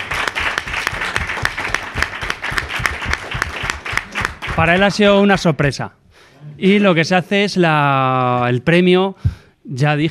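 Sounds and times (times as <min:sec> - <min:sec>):
audience applause at an award presentation: 0:00.0 - 0:05.0
speech: 0:04.6 - 0:10.0.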